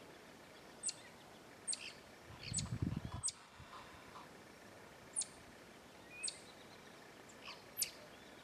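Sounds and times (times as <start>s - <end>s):
black-tufted marmoset high calls: 0.8s - 1.1s, 1.7s - 3.5s, 6.1s - 6.5s, 7.4s - 8.0s.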